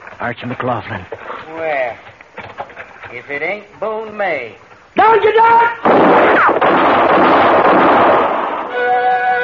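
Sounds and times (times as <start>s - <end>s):
speech: 0.2s - 2.2s, 3.1s - 9.3s
loud dense burst of gunfire in a shootout: 5.8s - 8.7s.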